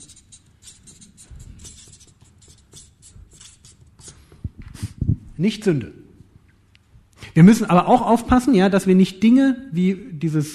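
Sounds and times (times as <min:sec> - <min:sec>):
marker or chalk writing on a board: 0:00.0 - 0:05.0
speech: 0:05.4 - 0:06.0, 0:07.4 - 0:10.5.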